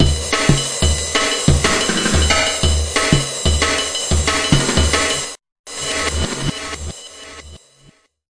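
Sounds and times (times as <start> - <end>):
drum loops and breaks: 0.0 - 5.3.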